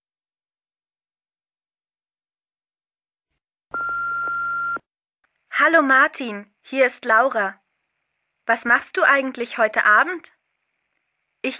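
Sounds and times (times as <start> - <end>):
answering machine tone before a recorded telephone message: 3.8 - 4.8
speech: 5.6 - 7.6, 8.5 - 10.4.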